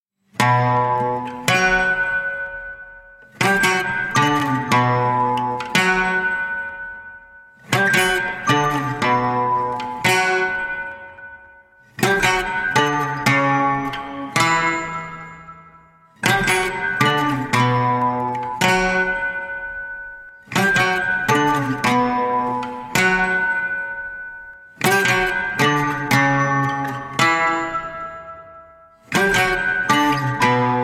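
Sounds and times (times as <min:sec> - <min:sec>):
guitar: 0:00.2 - 0:30.8
celesta: 0:00.4 - 0:30.8.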